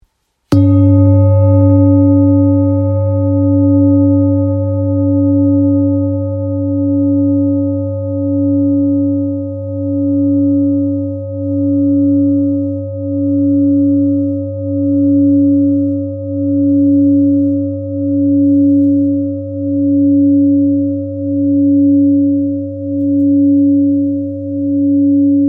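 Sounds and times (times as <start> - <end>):
therapeutic singing bowl in G: 0.5 - 25.4.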